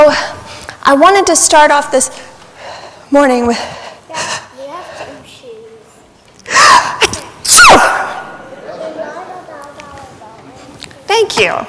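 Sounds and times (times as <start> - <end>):
speech: 0.9 - 2.3, 3.1 - 4.3, 11.2 - 11.6
person sneezing: 6.5 - 8.4.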